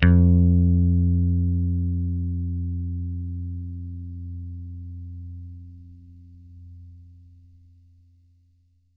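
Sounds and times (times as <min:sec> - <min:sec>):
picked bass guitar F2 note: 0:00.0 - 0:07.1.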